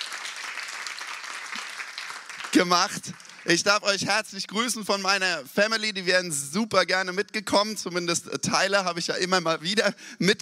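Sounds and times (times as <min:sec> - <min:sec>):
crowd clapping for a band: 0:00.0 - 0:04.6
speech: 0:02.6 - 0:10.3.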